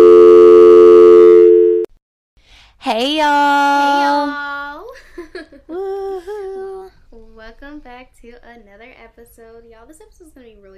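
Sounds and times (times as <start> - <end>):
telephone number not in service tone: 0.0 - 1.9
speech: 2.8 - 4.4, 7.1 - 10.7.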